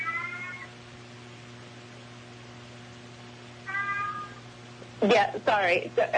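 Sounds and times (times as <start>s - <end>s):
cat meowing: 0.0s - 0.7s, 3.6s - 4.5s
steady low hum: 0.0s - 6.1s
speech: 5.0s - 6.1s.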